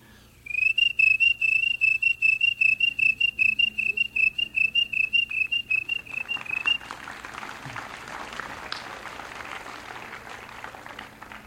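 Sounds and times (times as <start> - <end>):
broad hissy noise: 0.0 - 11.4
cricket chirping: 0.5 - 6.8.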